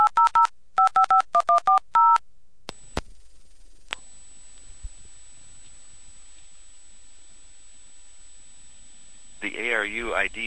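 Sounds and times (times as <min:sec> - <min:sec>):
touch-tone dialing beeps on a hybrid coin payphone: 0:00.0 - 0:02.2.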